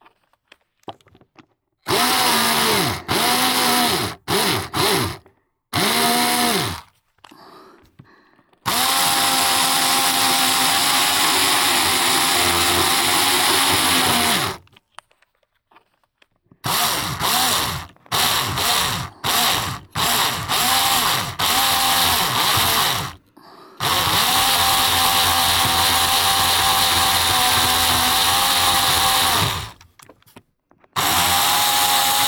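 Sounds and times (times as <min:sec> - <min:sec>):
power drill with a wide bit boring through: 0:01.9 - 0:05.2, 0:05.8 - 0:06.9, 0:08.7 - 0:14.6, 0:16.6 - 0:23.2, 0:23.8 - 0:29.9, 0:31.0 - 0:32.2.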